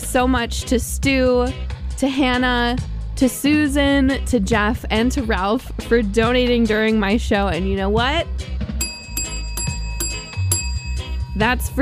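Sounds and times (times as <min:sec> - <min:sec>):
speech: 0:00.1 - 0:08.6, 0:11.4 - 0:11.7
bell ringing with bright metallic clangs: 0:08.8 - 0:11.7.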